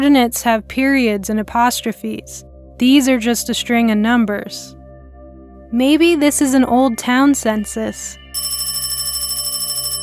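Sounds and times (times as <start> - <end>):
speech: 0.0 - 4.8, 5.7 - 8.2
old-style telephone bell ringing: 8.4 - 10.0.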